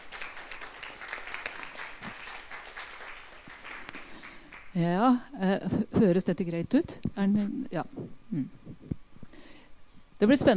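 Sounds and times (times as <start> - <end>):
audience applauding a speaker: 0.0 - 4.5
speech: 4.8 - 8.9, 10.2 - 10.5.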